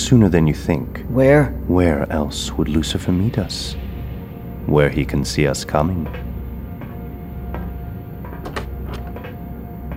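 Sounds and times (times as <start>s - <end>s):
steady low mechanical hum: 0.0s - 9.9s
speech: 0.1s - 3.8s, 4.7s - 6.3s
hatch door opening and closing as a man leaves: 8.2s - 9.9s.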